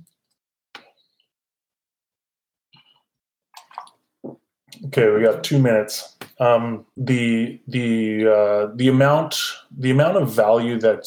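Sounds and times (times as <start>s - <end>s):
person drinking water: 2.8s - 4.9s
speech: 4.9s - 11.0s.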